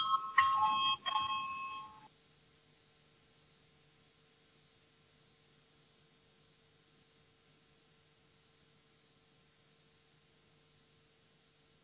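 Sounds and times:
electric voting bell in a parliament buzzing: 0:00.0 - 0:02.1.

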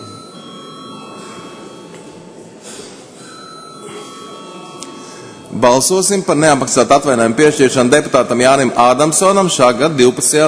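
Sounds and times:
bell ringing in a parliament chamber to call members to a vote: 0:00.0 - 0:07.3
speech: 0:05.5 - 0:10.4.

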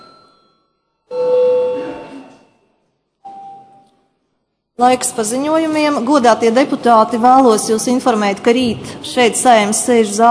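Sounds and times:
chamber bell chime in the Latvian parliament calling deputies to register: 0:00.0 - 0:02.3
speech: 0:04.8 - 0:10.2.

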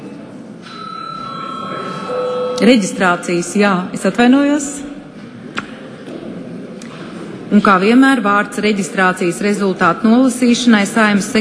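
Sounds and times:
electric bell ringing in a parliament chamber to call a break: 0:00.7 - 0:03.0
speech: 0:02.6 - 0:04.9, 0:07.5 - 0:11.3.

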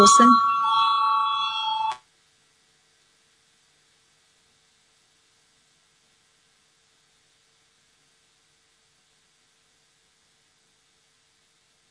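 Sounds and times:
speech: 0:00.0 - 0:00.5
parliamentary voting bell ringing with a bright electric tone: 0:00.0 - 0:02.0.

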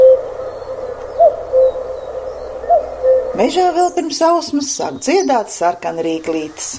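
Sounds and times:
common cuckoo calling: 0:00.0 - 0:05.3
steady outdoor hum: 0:00.0 - 0:06.4
speech: 0:03.4 - 0:06.7.

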